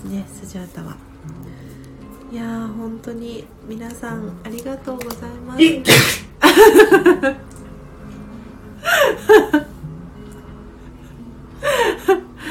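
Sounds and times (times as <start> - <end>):
speech: 0.1 - 7.5
person exaggerating sneezes for comic effect: 5.6 - 6.3
laughter: 6.4 - 7.4, 8.9 - 9.7.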